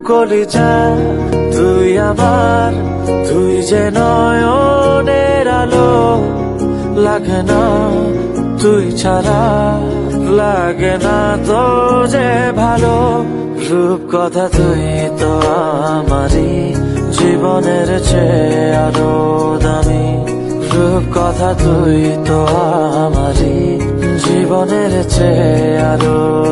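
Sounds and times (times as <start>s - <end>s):
person singing a Bengali song: 0.0s - 26.5s.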